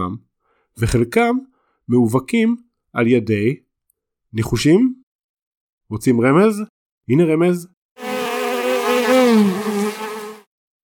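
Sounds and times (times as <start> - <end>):
speech: 0.0 - 3.6, 4.3 - 5.0, 5.9 - 7.7, 9.1 - 10.0
bee buzzing: 8.0 - 10.5.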